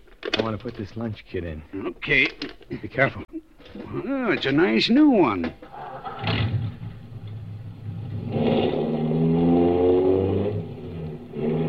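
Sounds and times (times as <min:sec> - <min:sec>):
speech: 0:00.4 - 0:05.6
car engine driving and revving: 0:06.0 - 0:11.6.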